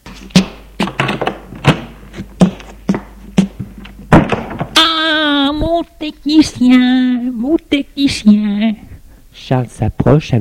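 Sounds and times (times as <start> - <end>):
sharp wooden clunks and latch knocks of a bedroom door: 0.0 - 4.8
bedroom door being opened: 0.0 - 8.6
speech: 5.8 - 8.8, 9.5 - 10.3.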